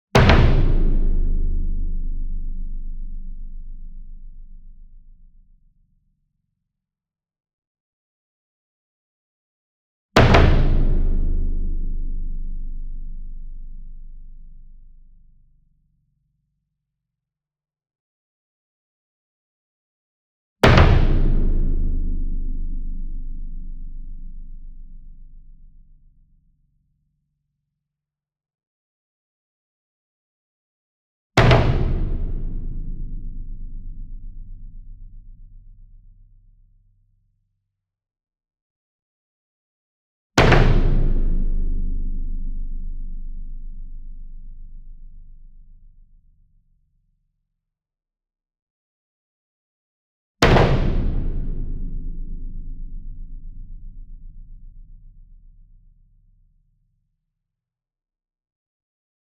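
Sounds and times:
40 inch concert bass drum hit with double hard beater: 0:00.2 - 0:04.7, 0:10.2 - 0:14.5, 0:20.6 - 0:25.5, 0:31.4 - 0:35.5, 0:40.4 - 0:45.2, 0:50.4 - 0:55.2.

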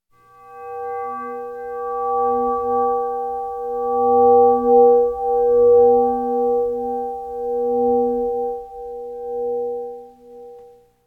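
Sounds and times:
eerie horror chime: 0:00.2 - 0:10.9.

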